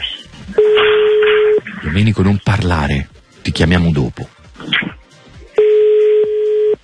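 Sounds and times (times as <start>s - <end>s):
telephone ringback tone of an outgoing call through the earpiece: 0.6s - 1.6s, 5.6s - 6.8s
speech: 2.0s - 4.3s.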